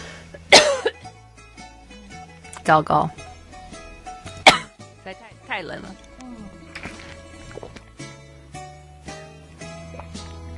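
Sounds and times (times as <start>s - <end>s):
person coughing: 0.4s - 1.0s, 4.4s - 4.7s
speech: 2.6s - 3.2s, 5.1s - 6.4s
throat sound: 6.1s - 7.8s.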